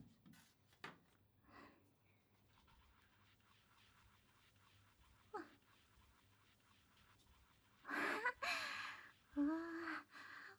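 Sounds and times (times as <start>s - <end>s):
carbonated shampoo foam fizzing: 2.3s - 10.5s.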